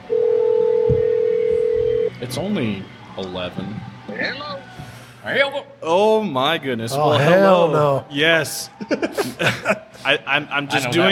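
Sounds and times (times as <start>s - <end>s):
steady telephone dialing tone: 0.0s - 2.2s
speech: 2.2s - 11.0s
laughter: 8.8s - 10.0s.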